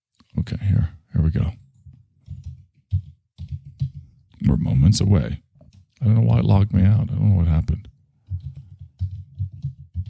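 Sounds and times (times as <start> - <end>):
speech: 0.4 - 1.6, 4.9 - 7.9
typing on a computer keyboard while logging in to a password manager: 1.3 - 10.0.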